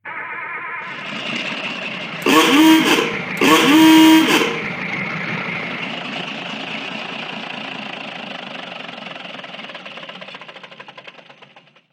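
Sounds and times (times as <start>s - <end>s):
ahooga horn: 2.2s - 4.8s.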